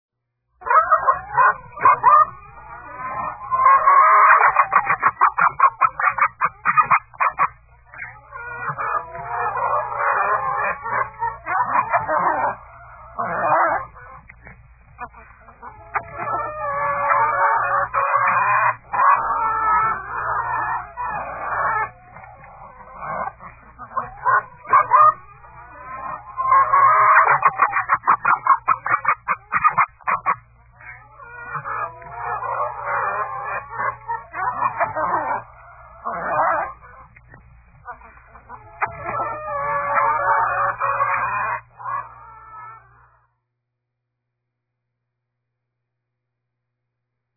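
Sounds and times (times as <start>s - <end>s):
chicks in a coop: 0.6s - 43.4s.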